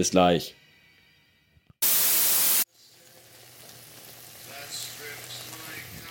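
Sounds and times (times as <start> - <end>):
speech: 0.0 - 0.6
food sizzling in a pan: 1.8 - 6.0.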